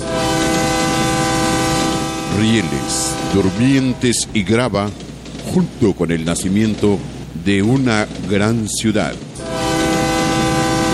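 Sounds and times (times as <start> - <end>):
train horn blast: 0.0 - 4.3, 9.4 - 10.9
rail cars rumbling: 0.0 - 10.9
speech: 2.4 - 9.6.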